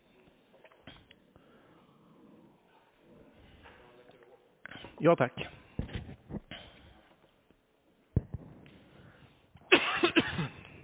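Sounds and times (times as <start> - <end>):
faint room noise: 0.0 - 10.8
speech: 5.0 - 5.6
person coughing harshly: 9.7 - 10.8.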